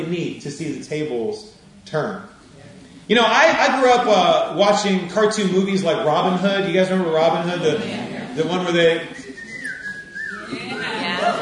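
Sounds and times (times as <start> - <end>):
speech: 0.0 - 2.4, 3.1 - 9.3
person whistling: 9.0 - 11.4.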